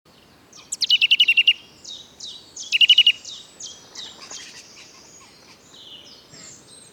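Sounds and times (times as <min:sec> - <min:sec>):
Eurasian nuthatch Sitta europaea trilling: 0:00.6 - 0:02.0, 0:02.6 - 0:06.6.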